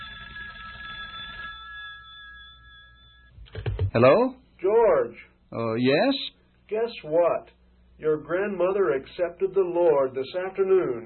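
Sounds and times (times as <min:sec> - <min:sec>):
telephone ringing with an electronic trill: 0:00.0 - 0:03.4
speech: 0:03.9 - 0:11.0.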